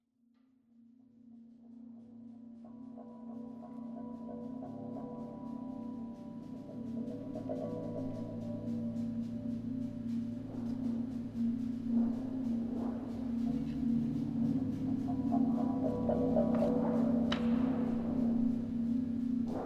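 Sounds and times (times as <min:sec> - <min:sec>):
noise drones: 0:05.2 - 0:19.6.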